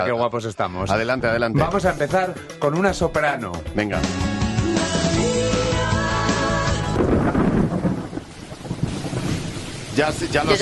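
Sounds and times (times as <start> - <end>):
speech: 0.0 - 5.0, 10.0 - 10.5
steady heavy rain downpour: 5.0 - 10.5
deep rumbling thunder: 6.5 - 10.5.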